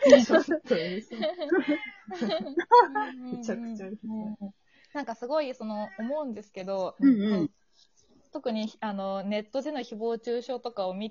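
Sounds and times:
laughter: 0.0 - 3.6
speech: 0.1 - 4.4, 5.0 - 7.6, 8.4 - 11.1
cat meowing loudly: 1.6 - 2.1.

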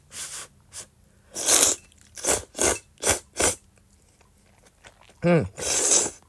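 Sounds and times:
slurping and chewing fresh ramen noodles in soy-sauce-based Morioka-style broth: 1.3 - 3.6, 4.2 - 6.2
speech: 5.2 - 5.7.

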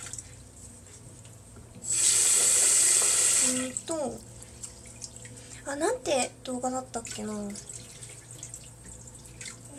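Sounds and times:
tap water running as rice is rinsed: 1.8 - 5.8, 6.5 - 9.7
speech: 3.7 - 4.3, 5.7 - 7.7.

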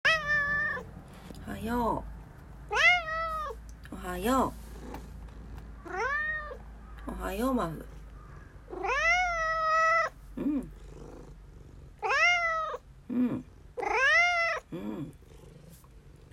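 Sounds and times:
cat chirping calls: 0.0 - 0.9, 2.7 - 3.6, 5.8 - 7.1, 8.1 - 10.2, 12.0 - 12.8, 13.8 - 14.7
cat meowing loudly: 0.0 - 0.9, 2.7 - 3.6, 5.8 - 6.6, 8.7 - 10.2, 12.0 - 12.8, 13.8 - 14.7
speech: 1.5 - 2.8, 4.0 - 4.6, 7.1 - 7.9, 13.2 - 13.9
cat purring softly: 4.2 - 6.7, 8.7 - 16.3.

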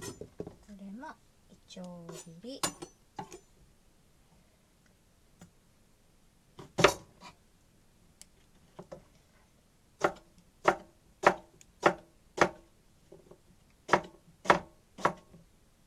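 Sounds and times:
speech: 1.8 - 2.9
knife chopping onions on a cutting board: 10.0 - 12.6, 13.9 - 15.3.

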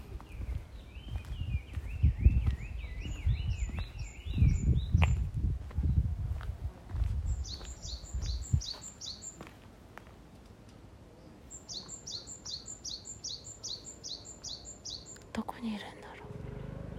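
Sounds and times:
birds chirping outdoors: 0.0 - 6.0, 7.0 - 9.6, 11.1 - 16.3
low rumbling: 0.0 - 7.5.

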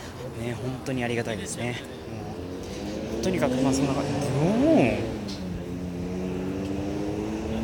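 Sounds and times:
speech: 0.4 - 2.3, 3.2 - 5.4
bus engine revving: 2.2 - 7.6.

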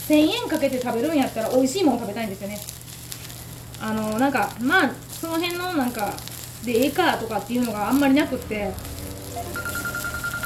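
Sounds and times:
hissy sizzling background: 0.0 - 10.4
speech: 0.1 - 2.8, 3.8 - 9.7
phone ringing with a thin electronic tone: 9.4 - 10.4.

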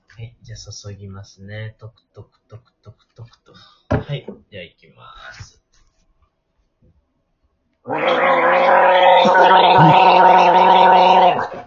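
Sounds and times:
speech: 0.2 - 5.6
vigorous gargle with liquid toothpaste: 7.9 - 11.6.

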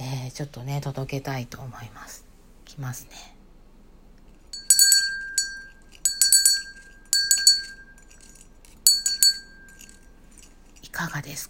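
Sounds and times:
speech: 0.4 - 3.4, 11.0 - 11.4
small bells on a Christmas wreath jingling: 4.5 - 11.4.

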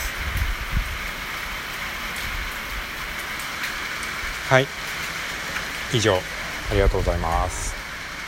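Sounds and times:
steady rain: 0.0 - 8.2
water drips: 0.0 - 8.2
speech: 4.5 - 4.8, 5.9 - 7.8.

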